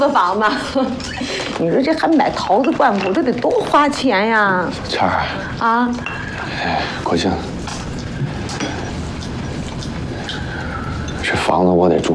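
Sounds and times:
speech: 0:00.0 - 0:07.5, 0:11.5 - 0:12.1
overlapping conversation: 0:00.0 - 0:12.1
bowls and chopsticks clinking at a home meal: 0:02.0 - 0:04.1, 0:05.9 - 0:11.6.

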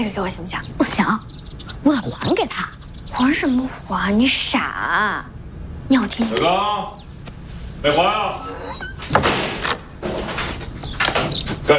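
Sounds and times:
speech: 0:00.0 - 0:05.3, 0:05.9 - 0:07.0, 0:07.8 - 0:09.2
door being opened: 0:08.1 - 0:11.4.

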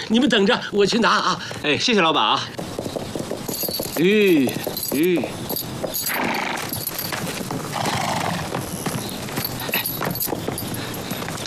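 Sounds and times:
speech: 0:00.1 - 0:02.7, 0:04.0 - 0:05.4
horse hoofbeats as mounts are readied for a road journey: 0:01.4 - 0:11.4
horses whinnying and snorting: 0:03.4 - 0:11.2.

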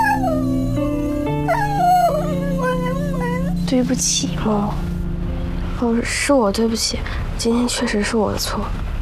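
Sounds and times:
dog picked up from the road whimpering: 0:00.0 - 0:03.7
speech: 0:03.7 - 0:04.9, 0:05.8 - 0:08.9.

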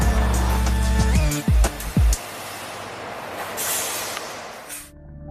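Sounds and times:
garbage truck low engine idle: 0:00.0 - 0:03.3
heavy garbage trucks rumbling at a waste transfer center: 0:00.0 - 0:04.9
garbage truck air brakes hissing: 0:02.2 - 0:04.9.

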